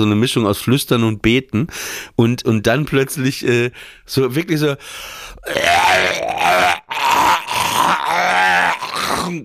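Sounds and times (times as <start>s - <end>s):
speech: 0.0s - 8.4s, 9.1s - 9.4s
person gasping: 4.8s - 5.5s
voice imitating a man retching and gagging: 5.4s - 9.4s.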